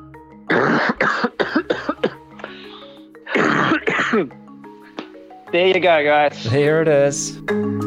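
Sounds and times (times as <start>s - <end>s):
harsh throaty coughing fit: 0.5s - 4.4s
speech: 1.0s - 1.6s, 4.2s - 4.4s, 5.5s - 7.7s.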